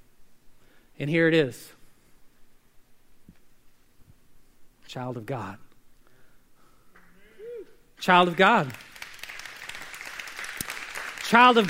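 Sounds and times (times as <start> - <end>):
speech: 1.0 - 1.8, 4.9 - 5.7, 8.0 - 8.9, 11.3 - 11.6
crowd applauding politely: 8.2 - 11.6.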